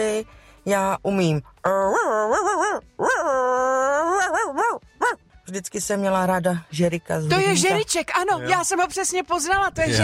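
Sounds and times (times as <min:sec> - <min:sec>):
speech: 0:00.0 - 0:04.8, 0:05.5 - 0:10.0
female listener imitating a dog whimpering: 0:01.6 - 0:05.2.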